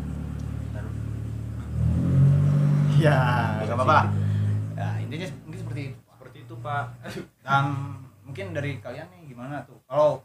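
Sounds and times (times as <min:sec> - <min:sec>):
yellow car engine revving as it passes: 0:00.0 - 0:07.1
laughter: 0:03.0 - 0:04.2
speech: 0:03.0 - 0:04.2, 0:06.6 - 0:10.2.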